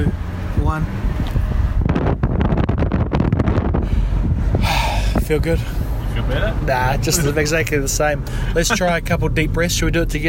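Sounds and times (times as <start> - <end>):
speech: 0.0 - 1.2, 5.3 - 10.2
wind rushing in through an open window of a moving car: 0.0 - 10.2.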